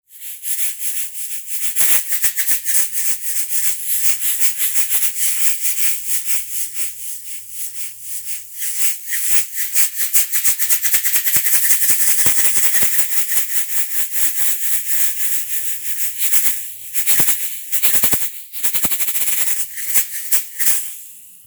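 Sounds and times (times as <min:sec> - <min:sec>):
shaker rattling: 0:00.1 - 0:21.4.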